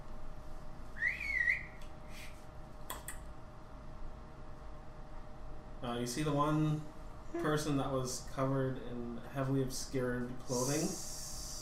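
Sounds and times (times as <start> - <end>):
steady hum: 0.0 - 11.6
person whistling a short warbling two-part call: 1.0 - 2.3
speech: 5.8 - 11.1.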